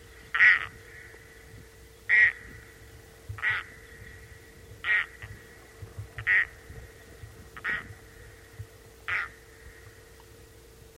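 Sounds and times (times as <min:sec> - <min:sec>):
soft steady hum: 0:00.0 - 0:10.9
loon kark calls: 0:00.2 - 0:01.4, 0:02.0 - 0:02.8, 0:03.4 - 0:05.6, 0:06.2 - 0:06.7, 0:07.6 - 0:09.9.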